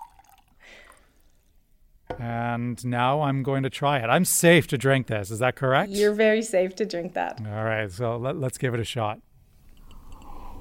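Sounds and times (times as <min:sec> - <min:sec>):
liquid poured into a glass of water: 0:00.0 - 0:01.6
speech: 0:02.2 - 0:09.3.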